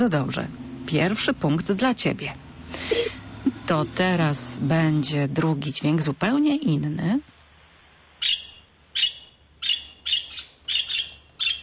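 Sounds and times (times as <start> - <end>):
speech: 0.0 - 7.3
budgerigar chirping: 8.2 - 11.6.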